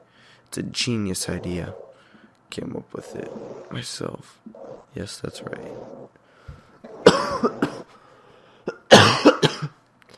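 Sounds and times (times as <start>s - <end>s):
speech: 0.5s - 1.8s, 2.5s - 6.2s, 7.4s - 7.8s
harsh rough coughing: 6.9s - 8.0s, 8.6s - 9.8s.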